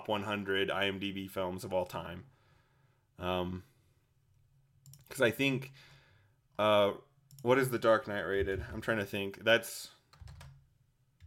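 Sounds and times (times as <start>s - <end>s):
speech: 0.0s - 2.4s, 3.2s - 3.7s, 5.1s - 5.9s, 6.6s - 10.0s
computer keyboard keystroke clicks: 4.8s - 5.2s, 10.1s - 10.6s.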